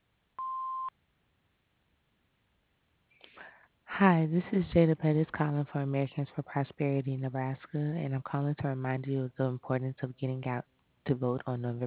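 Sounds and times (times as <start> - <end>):
answering machine electronic beep: 0.4 - 0.9
speech: 4.0 - 11.8.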